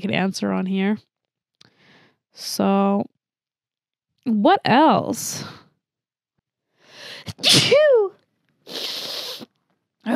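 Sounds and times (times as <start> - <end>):
speech: 0.0 - 1.1, 2.4 - 3.2, 4.2 - 5.6, 7.1 - 8.9
person sneezing: 7.3 - 7.9, 8.7 - 9.5
person sniffing: 8.7 - 9.5.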